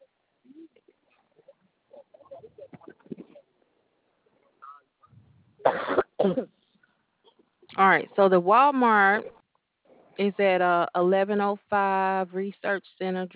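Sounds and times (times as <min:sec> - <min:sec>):
harsh coughs: 0:05.6 - 0:06.6
speech: 0:06.2 - 0:06.6, 0:07.8 - 0:09.4, 0:10.2 - 0:13.3.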